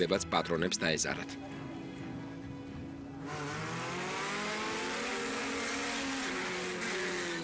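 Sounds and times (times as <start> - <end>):
speech: 0.0 - 1.6
old cars racing along a main road: 2.6 - 7.4.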